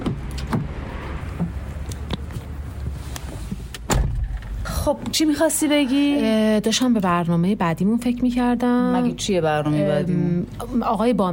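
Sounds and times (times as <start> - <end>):
thumps and clicks of car doors while people get into a car: 0.0 - 1.6, 3.5 - 4.5
car door closing thud: 3.8 - 4.4
speech: 4.9 - 11.3.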